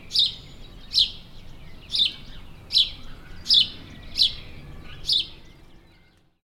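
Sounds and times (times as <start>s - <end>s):
house sparrow Passer domesticus giving sharp emphatic chirps: 0.0s - 6.2s.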